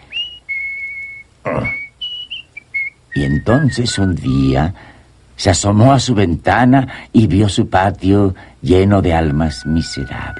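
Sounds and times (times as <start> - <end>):
clear high whistled melody: 0.0 - 4.5
speech: 3.2 - 10.3.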